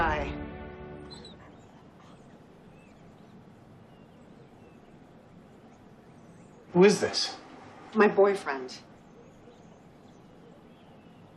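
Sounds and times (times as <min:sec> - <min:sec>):
steady low rumble: 0:00.0 - 0:11.3
dog whimpering: 0:01.1 - 0:03.4
speech: 0:06.8 - 0:08.9.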